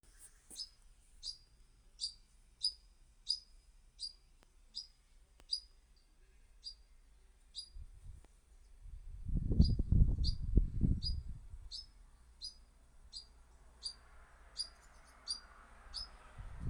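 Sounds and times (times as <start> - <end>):
European pied flycatcher calling: 0.5 - 5.7, 6.6 - 6.9, 7.5 - 7.8, 9.5 - 16.2.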